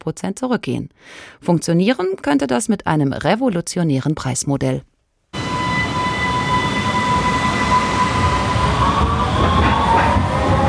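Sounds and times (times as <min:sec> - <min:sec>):
speech: 0:00.0 - 0:04.9
U-Bahn line 1 train rumbling into underground Stephansplatz station in Vienna: 0:05.4 - 0:10.6
high squealing train wheels: 0:05.4 - 0:10.6.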